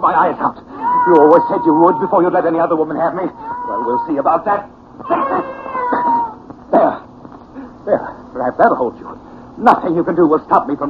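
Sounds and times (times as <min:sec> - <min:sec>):
speech: 0:00.1 - 0:05.6, 0:07.8 - 0:10.8
cat yowling: 0:00.8 - 0:04.4, 0:05.0 - 0:06.4.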